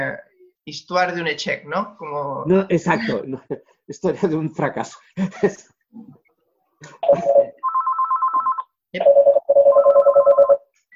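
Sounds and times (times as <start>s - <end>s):
speech: 0.0s - 6.2s, 6.8s - 7.6s, 8.9s - 9.3s
telephone ringing: 7.0s - 10.7s.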